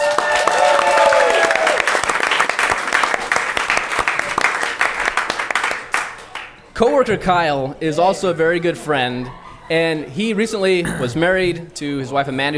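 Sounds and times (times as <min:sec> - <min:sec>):
room full of people applauding: 0:00.0 - 0:06.6
speech: 0:06.8 - 0:12.5.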